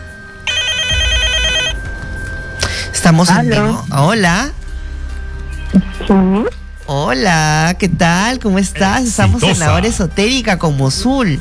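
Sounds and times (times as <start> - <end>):
telephone ringing for an incoming call: 0.5 - 1.8
speech: 3.1 - 4.6, 5.7 - 11.3.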